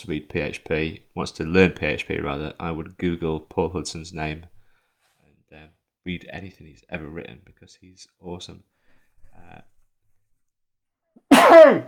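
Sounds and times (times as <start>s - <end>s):
speech: 0.0s - 4.5s, 5.5s - 8.7s, 9.4s - 9.7s
person sneezing: 11.3s - 11.8s.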